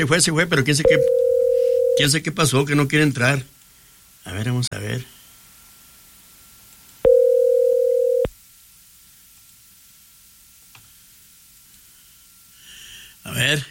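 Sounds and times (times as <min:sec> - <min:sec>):
speech: 0:00.0 - 0:01.2, 0:02.0 - 0:03.5, 0:04.2 - 0:05.2, 0:13.4 - 0:13.6
quiet hiss: 0:00.0 - 0:13.6
telephone tone on a stuck phone line: 0:00.8 - 0:02.1, 0:07.0 - 0:08.3.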